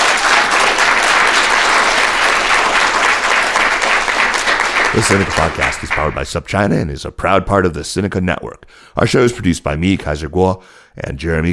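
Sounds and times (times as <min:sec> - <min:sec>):
audience applause: 0:00.0 - 0:06.2
speech: 0:05.0 - 0:11.5.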